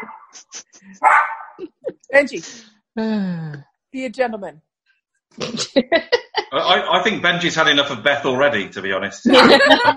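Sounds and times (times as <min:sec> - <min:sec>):
speech: 0:00.0 - 0:04.7, 0:05.3 - 0:09.9
foster dog barking: 0:01.0 - 0:01.6
laughter: 0:05.4 - 0:09.9.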